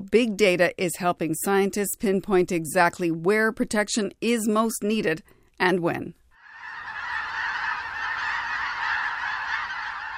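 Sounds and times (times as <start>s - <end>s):
speech: 0.1s - 6.2s
large flock of geese honking: 6.4s - 10.1s.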